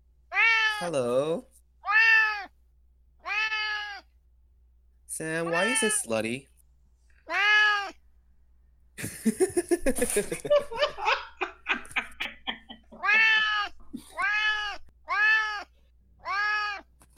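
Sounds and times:
cat meowing with a little purr: 0:00.3 - 0:00.9, 0:01.8 - 0:02.5, 0:03.2 - 0:04.1, 0:05.4 - 0:06.0, 0:07.2 - 0:08.0, 0:12.9 - 0:16.9
speech: 0:00.8 - 0:01.5, 0:05.2 - 0:06.5, 0:09.2 - 0:11.0
people laughing: 0:09.0 - 0:14.2.

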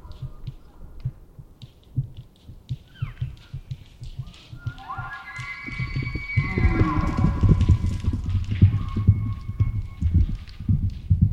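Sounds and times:
elk herd hooves running on packed earth: 0:00.0 - 0:11.3
wild elk bugling in Washington in the Pacific Northwest: 0:02.8 - 0:10.7.

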